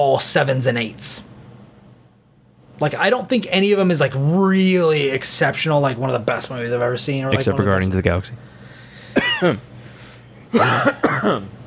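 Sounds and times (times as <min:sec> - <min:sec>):
speech: 0:00.0 - 0:01.3, 0:02.8 - 0:08.5, 0:09.4 - 0:09.7, 0:10.5 - 0:11.6
person coughing: 0:09.2 - 0:09.7, 0:10.5 - 0:11.5.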